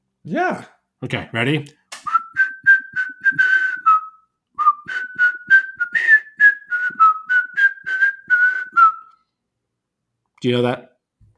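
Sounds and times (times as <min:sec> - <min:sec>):
speech: 0:00.2 - 0:01.8, 0:10.4 - 0:10.9
person whistling a melodic tune: 0:02.0 - 0:09.2.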